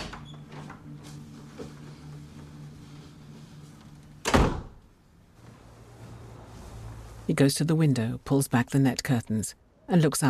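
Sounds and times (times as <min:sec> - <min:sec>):
low steady hum: 0:00.0 - 0:10.2
door being carefully shut: 0:04.2 - 0:04.8
speech: 0:07.3 - 0:10.2.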